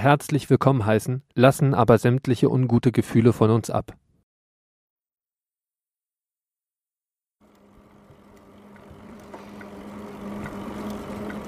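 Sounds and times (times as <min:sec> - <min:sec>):
speech: 0:00.0 - 0:04.0
bicycle tyres humming on smooth asphalt: 0:07.4 - 0:11.4.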